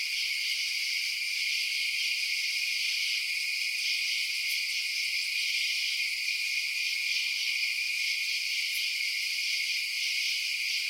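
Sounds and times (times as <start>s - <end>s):
insects in a steady night chorus: 0.0s - 10.8s.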